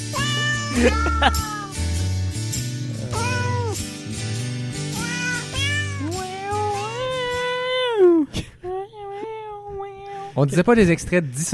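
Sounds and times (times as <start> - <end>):
cat meowing in long wavering off-key notes: 0.0 - 1.8, 3.0 - 3.8, 5.0 - 7.5
steady low musical backing: 0.1 - 7.7
laughter: 0.6 - 1.5
speech: 0.8 - 1.8, 10.4 - 11.5.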